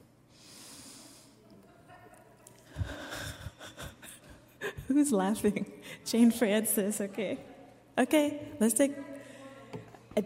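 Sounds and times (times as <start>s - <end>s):
congregation drawing a deep breath together: 0.3s - 1.4s, 2.6s - 4.5s
speech: 5.0s - 9.1s.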